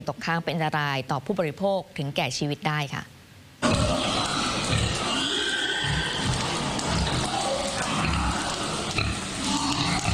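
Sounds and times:
speech: 0.1 - 3.2
pigs grunting and snorting in a livestock pen on a farm: 3.6 - 10.1.

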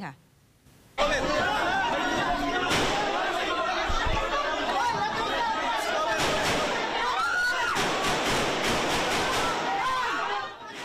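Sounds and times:
speech: 0.0 - 0.2
laughter: 1.0 - 7.8
panicked crowd screaming and shouting inside the Philippine Senate building: 1.0 - 10.8
gunshots inside the Philippine Senate building: 2.6 - 3.4, 6.1 - 10.2.

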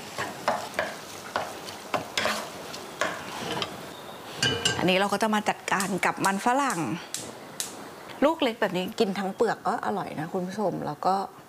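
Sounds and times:
scraping stirring strokes while stir-frying tomatoes in a pan: 0.0 - 5.0
tomatoes sizzling in a pan: 0.0 - 11.4
speech: 4.8 - 7.2, 8.2 - 11.4.

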